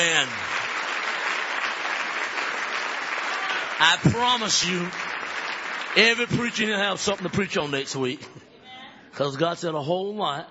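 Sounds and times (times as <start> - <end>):
speech: 0.0 - 0.6, 3.8 - 5.4, 6.0 - 8.5, 9.2 - 10.4
church congregation applauding with hand claps: 0.0 - 8.2.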